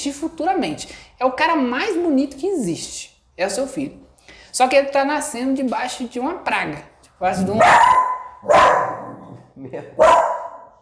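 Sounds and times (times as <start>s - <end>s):
speech: 0.0s - 8.8s, 9.6s - 10.3s
murmur of a voice: 7.3s - 7.7s
guard dog barking: 7.4s - 9.3s, 10.0s - 10.8s.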